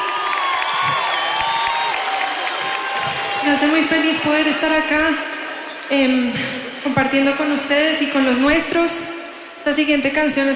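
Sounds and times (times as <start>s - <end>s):
large audience clapping at a live music performance: 0.0s - 4.2s
speech: 3.5s - 5.3s, 5.9s - 10.5s.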